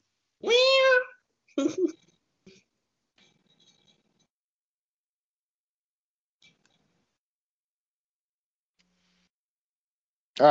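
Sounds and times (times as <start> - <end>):
cat meowing: 0.4 - 1.2
speech: 1.6 - 2.0.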